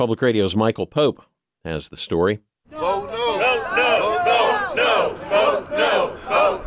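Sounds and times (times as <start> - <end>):
speech: 0.0 - 3.0
crowd of protesters chanting in opposition to a sports arena authority: 2.7 - 6.6.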